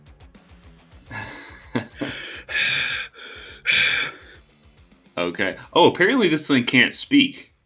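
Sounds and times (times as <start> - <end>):
laughter: 1.1 - 2.5
person imitating heavy breathing: 1.1 - 4.4
speech: 5.2 - 7.5.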